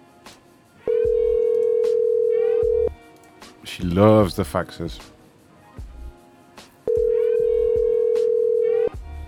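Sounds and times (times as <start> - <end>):
hiss: 0.0 - 8.9
telephone ringback tone while waiting for pickup: 0.9 - 2.9, 6.9 - 9.0
speech: 3.8 - 5.2.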